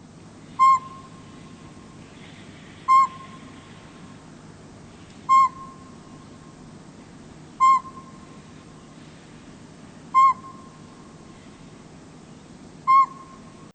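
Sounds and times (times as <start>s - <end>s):
low hiss: 0.0s - 13.7s
northern pygmy owl tooting calls: 0.5s - 4.2s, 5.0s - 6.5s, 7.6s - 9.1s, 10.1s - 11.7s, 12.8s - 13.7s.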